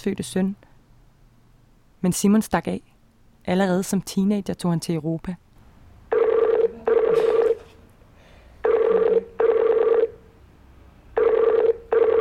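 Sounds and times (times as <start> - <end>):
speech: 0.0 - 0.7, 2.0 - 5.4
Skype call ringing tone chimes: 6.1 - 7.6, 8.6 - 10.2, 11.2 - 12.2.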